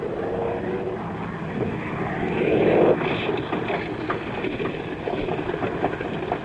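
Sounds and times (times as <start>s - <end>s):
damaged propeller airplane droning with rough engine noise: 0.0s - 6.4s.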